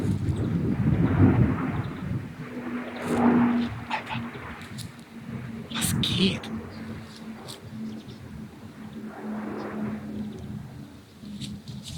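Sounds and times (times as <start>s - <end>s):
military jet flying low overhead: 0.0s - 11.7s
man exclaiming: 5.8s - 6.5s
speech: 6.2s - 6.5s.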